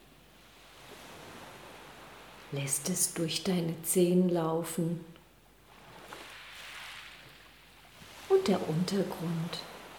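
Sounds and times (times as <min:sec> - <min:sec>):
gentle waves washing on shore: 0:00.3 - 0:03.4, 0:05.6 - 0:09.9
speech: 0:02.5 - 0:05.1, 0:08.5 - 0:09.7.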